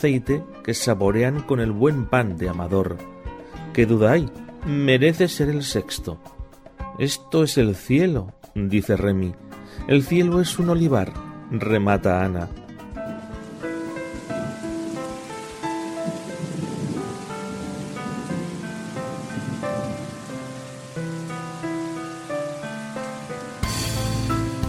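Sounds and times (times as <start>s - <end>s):
speech: 0.0s - 3.2s, 3.8s - 6.4s, 7.0s - 12.6s
steady heavy rain downpour: 13.1s - 24.6s.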